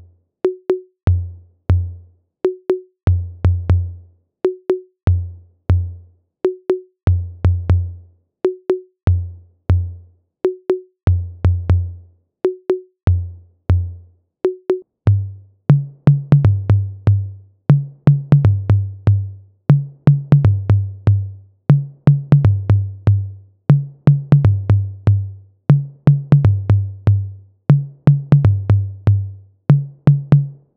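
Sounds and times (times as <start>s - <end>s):
Roland TR 08 drum machine tom conga: 0.5s - 1.8s, 2.5s - 3.9s, 4.5s - 5.8s, 6.5s - 9.9s, 10.5s - 30.7s.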